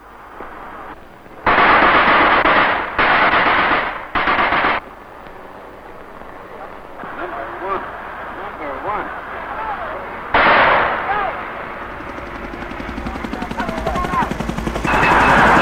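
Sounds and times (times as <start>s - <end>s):
battlefield noise: 0.0s - 15.6s
machine gun fire in battle: 1.4s - 4.8s, 9.0s - 15.6s
faint voices on a battlefield: 4.7s - 15.6s.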